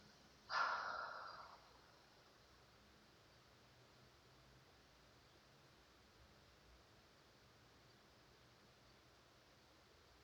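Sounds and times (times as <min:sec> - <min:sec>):
deep breath drawn in through the nose: 0:00.5 - 0:01.7.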